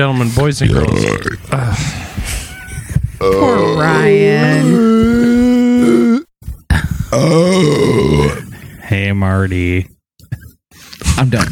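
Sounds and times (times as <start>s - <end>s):
speech: 0.0s - 2.4s, 3.2s - 5.2s, 8.9s - 9.9s, 11.2s - 11.5s
loud drawn-out burps: 0.6s - 1.8s, 3.2s - 8.5s.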